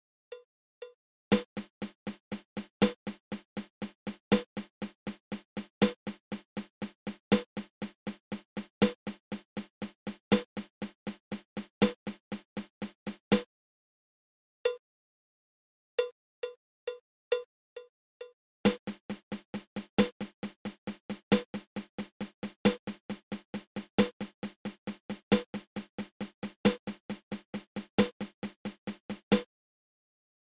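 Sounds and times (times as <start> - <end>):
paradiddle-diddle drum rudiment: 1.3 - 13.5, 18.7 - 29.5.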